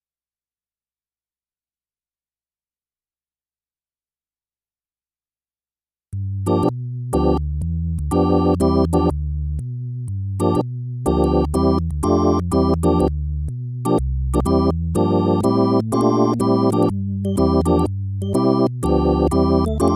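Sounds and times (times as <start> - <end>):
electronic music: 6.2 - 9.2, 10.3 - 13.2, 13.8 - 19.9.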